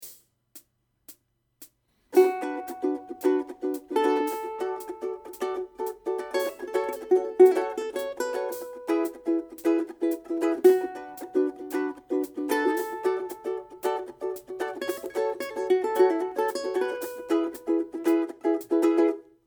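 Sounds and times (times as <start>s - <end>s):
ukulele outro solo: 2.1s - 19.4s.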